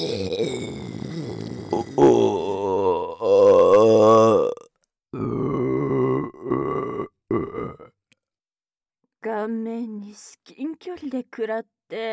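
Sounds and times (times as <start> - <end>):
loud deep croaky drawn-out belches: 0.0 - 8.0
speech: 11.2 - 12.1.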